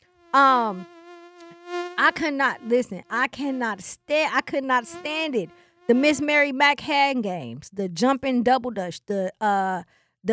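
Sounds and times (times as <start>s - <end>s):
voice imitating a mosquito with a nasal buzzing whine: 0.0s - 7.0s
speech: 0.4s - 1.0s, 2.0s - 10.3s.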